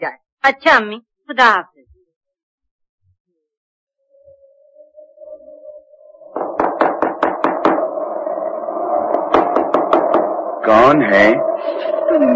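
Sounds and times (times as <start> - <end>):
speech: 0.4 - 1.7, 10.6 - 12.3
steady low hum: 4.0 - 12.3
sharp knocks on a door: 6.4 - 7.8, 9.2 - 10.3.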